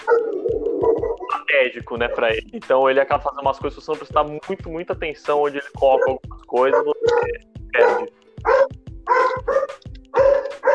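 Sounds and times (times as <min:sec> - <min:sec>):
dog barking: 0:00.0 - 0:01.4, 0:05.9 - 0:10.7
speech: 0:01.7 - 0:08.2.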